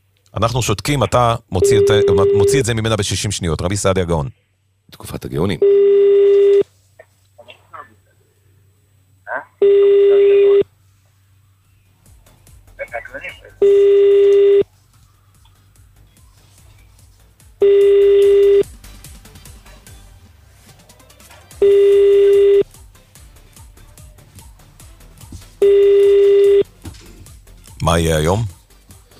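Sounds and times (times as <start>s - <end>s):
speech: 0.3s - 5.9s, 28.0s - 28.6s
phone line ringback tone: 1.6s - 2.7s, 5.6s - 6.6s, 9.6s - 10.6s, 13.6s - 14.7s, 17.6s - 18.7s, 21.6s - 22.7s, 25.6s - 26.7s.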